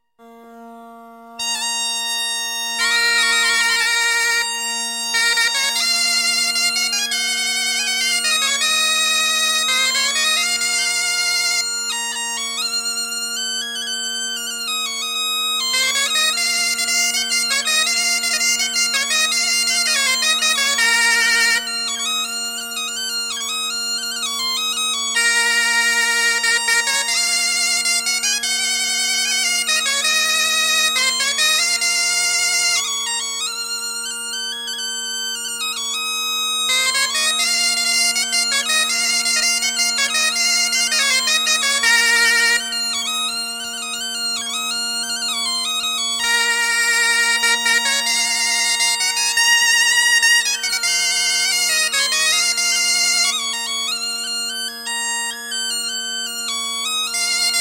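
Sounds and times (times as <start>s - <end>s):
Breton plinn dance music: 2.2s - 57.5s.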